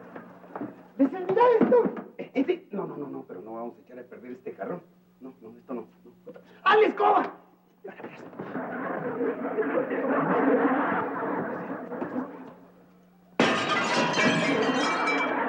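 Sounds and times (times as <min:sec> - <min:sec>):
speech: 0:00.6 - 0:12.3
laughter: 0:07.9 - 0:12.8, 0:14.4 - 0:15.4
window glass shattering: 0:13.4 - 0:15.4.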